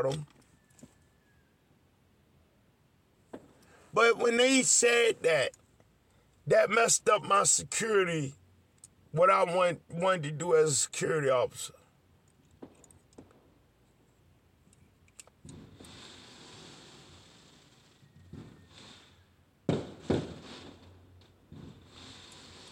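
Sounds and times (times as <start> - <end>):
speech: 0.0 - 0.4, 3.9 - 5.6, 6.4 - 8.4, 9.1 - 11.8
Fourth of July fireworks popping outside: 3.3 - 3.6, 12.5 - 13.6, 15.4 - 22.7.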